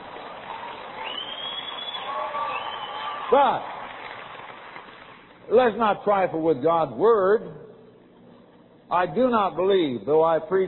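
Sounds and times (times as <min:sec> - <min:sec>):
audience of women applauding: 0:00.0 - 0:05.3
high whistle: 0:01.0 - 0:03.3
speech: 0:03.3 - 0:03.7, 0:05.5 - 0:07.7, 0:08.9 - 0:10.6.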